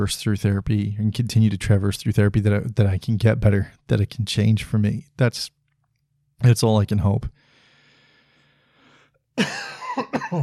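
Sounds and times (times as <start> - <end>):
speech: 0.0 - 5.6, 6.4 - 7.4, 9.4 - 10.4
harsh rasping coughs from a sick person with a tight chest: 9.4 - 10.4.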